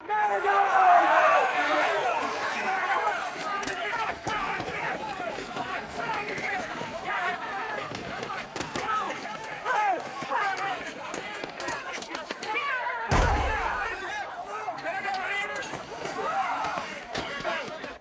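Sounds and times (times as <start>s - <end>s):
chaotic crowd riot foley: 0.0s - 17.9s
scuffling: 13.1s - 14.2s
shield impacts: 13.1s - 14.2s.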